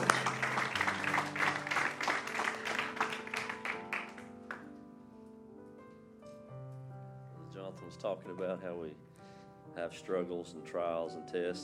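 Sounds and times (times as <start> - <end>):
sustained organ or keyboard chords: 0.0 - 4.6
audience clapping in a steady lively rhythm: 0.0 - 4.7
speech: 7.7 - 9.2, 9.8 - 11.6.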